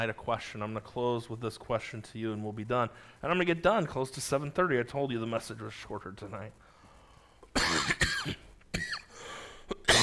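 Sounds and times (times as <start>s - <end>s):
speech: 0.0s - 6.6s
person coughing hard: 7.5s - 10.0s
person clearing throat: 7.6s - 9.1s, 9.7s - 10.0s.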